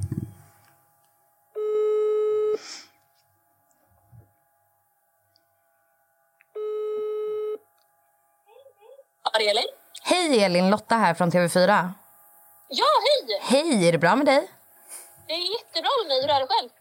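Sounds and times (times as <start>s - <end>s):
telephone ringback tones while placing a call: 1.6s - 2.6s, 6.6s - 7.6s
speech: 9.4s - 12.0s, 12.7s - 14.6s, 15.3s - 16.7s.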